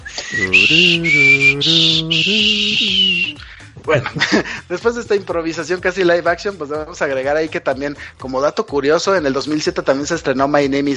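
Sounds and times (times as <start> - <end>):
person whistling a slow eerie TV theme melody: 0.0 - 3.7
speech: 0.3 - 10.9
laughter: 3.8 - 4.6.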